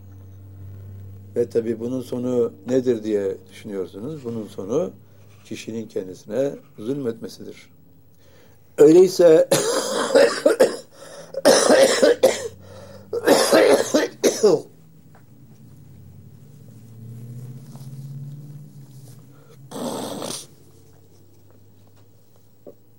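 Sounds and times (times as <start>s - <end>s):
speech: 1.4s - 7.7s, 8.8s - 10.6s, 14.4s - 14.8s
person coughing hard: 9.5s - 14.7s.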